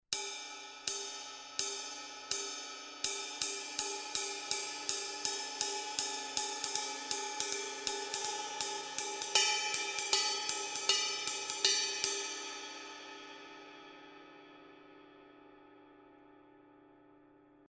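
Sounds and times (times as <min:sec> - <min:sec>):
Paiste Color Sound 900 Black Mega Ride cymbal: 0:00.1 - 0:13.6.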